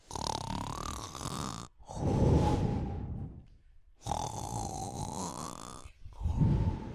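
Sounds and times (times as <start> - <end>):
loud snoring: 0.0 - 2.2, 4.0 - 6.7.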